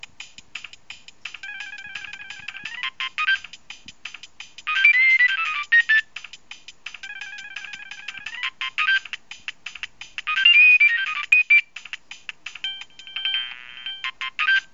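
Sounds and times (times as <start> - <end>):
Nokia 3510i mobile phone ringtone: 1.4 - 3.5, 4.7 - 6.1, 7.0 - 9.1, 10.3 - 11.7, 12.6 - 14.7.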